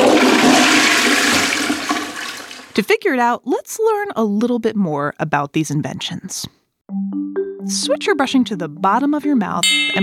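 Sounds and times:
toilet flushing: 0.0s - 2.8s
speech: 2.8s - 10.0s.

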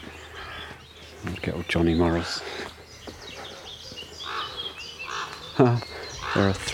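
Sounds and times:
smaller birds chirping and twittering: 0.0s - 6.7s
speech: 1.4s - 2.8s, 5.6s - 6.7s
corvids cawing from a tree: 4.2s - 6.7s.

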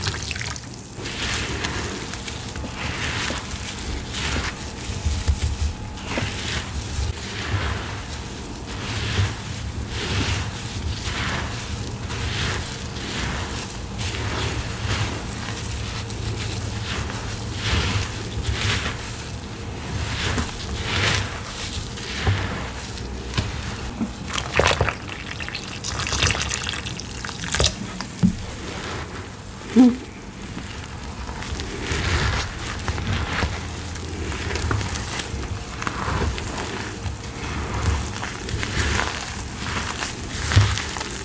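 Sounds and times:
water pouring: 0.0s - 0.8s, 23.9s - 28.6s
crackling and crunching of powder and paste being handled: 0.0s - 41.2s.

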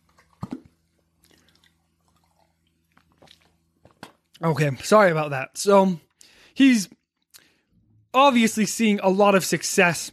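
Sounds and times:
person drinking water: 0.2s - 4.0s
sips and swallows of a drink of water: 1.1s - 3.7s
speech: 4.4s - 6.0s, 6.6s - 7.0s, 8.2s - 10.1s.

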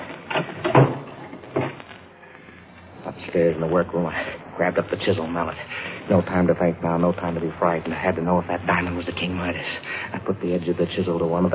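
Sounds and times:
closet door thudding shut: 0.3s - 1.8s
speech: 3.3s - 11.5s.

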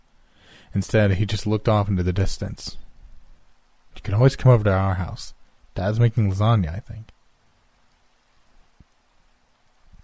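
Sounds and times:
rain falling: 0.0s - 10.0s
speech: 0.7s - 2.8s, 4.0s - 7.2s
water drips and taps: 7.1s - 10.0s.

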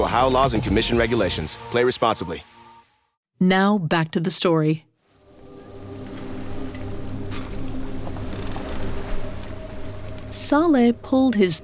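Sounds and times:
speech: 0.0s - 2.6s, 3.4s - 4.9s, 10.3s - 11.6s
faint breeze over the open ocean: 5.2s - 11.4s
boat engine drone heading out into the open ocean: 5.2s - 11.6s.

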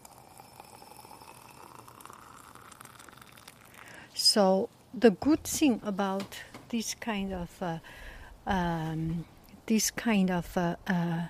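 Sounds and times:
water boiling at a steady roll: 0.0s - 4.1s
speech: 4.4s - 11.2s.

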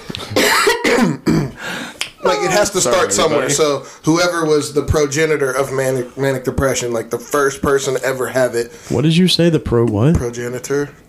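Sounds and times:
harsh rasping coughs: 0.2s - 1.7s
speech: 2.3s - 11.0s.

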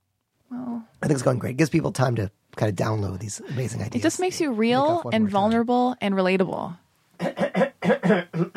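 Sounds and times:
speech: 1.1s - 8.5s
person coughing harshly: 7.2s - 8.5s.

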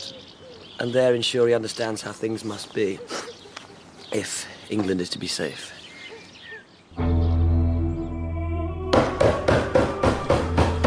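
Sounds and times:
speech: 0.8s - 3.2s, 4.1s - 5.8s
sustained low musical drone: 7.0s - 10.8s
heavy pounding on a bishop's door: 8.9s - 10.8s.

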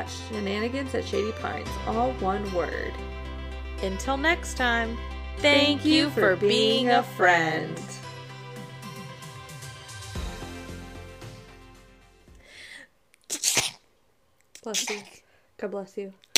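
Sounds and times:
speech: 0.0s - 3.2s, 3.8s - 8.0s, 14.7s - 16.2s
upbeat music: 0.0s - 12.4s
person sneezing: 13.3s - 13.8s, 14.7s - 15.2s.

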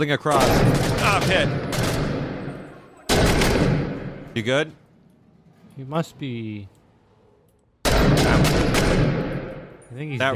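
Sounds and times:
speech: 0.0s - 1.7s, 4.4s - 4.8s, 5.8s - 6.8s, 9.9s - 10.3s
gunfire in a military shooter video game: 0.3s - 4.2s, 7.8s - 9.6s.

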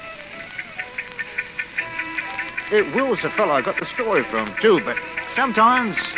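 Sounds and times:
wound-up watch ticking: 0.0s - 6.1s
speech: 2.7s - 6.1s.

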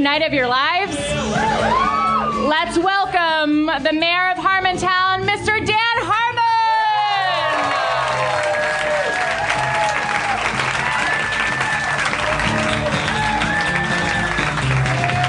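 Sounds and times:
speech: 0.0s - 6.2s
large live audience clapping: 7.1s - 15.2s.

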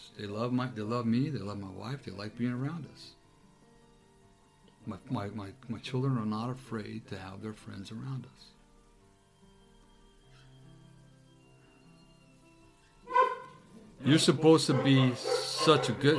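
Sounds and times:
speech: 0.1s - 3.2s, 4.8s - 8.5s, 14.0s - 16.1s
dog barking or yelping: 13.1s - 13.6s, 14.5s - 16.1s
dog whimpering: 14.1s - 16.1s.

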